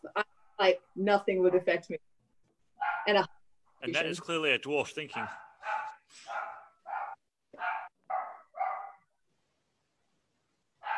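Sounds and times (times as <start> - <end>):
speech: 0.2 - 2.1, 3.1 - 5.4
dogs barking excitedly: 2.8 - 3.3, 5.1 - 9.1.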